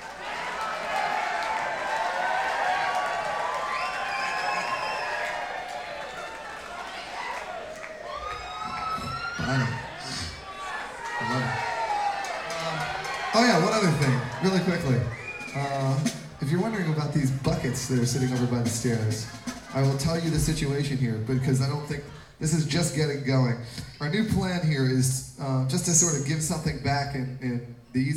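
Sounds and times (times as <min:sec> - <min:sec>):
louder shouts from the audience: 0:00.0 - 0:15.6
large audience yelling and cheering: 0:00.0 - 0:22.6
speech: 0:09.5 - 0:09.8, 0:13.6 - 0:28.1.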